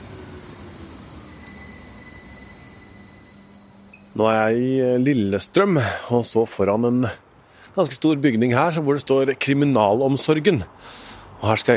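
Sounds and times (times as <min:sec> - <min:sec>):
train rolling on rails: 0:00.0 - 0:06.7
speech: 0:04.2 - 0:11.7.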